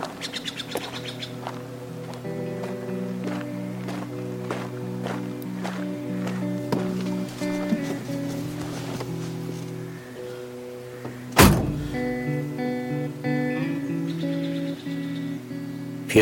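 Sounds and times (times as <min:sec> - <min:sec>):
footsteps walking toward a car: 0:00.0 - 0:09.8
sustained musical drone: 0:00.0 - 0:16.1
bright bird chirps: 0:00.2 - 0:01.4, 0:14.0 - 0:15.8.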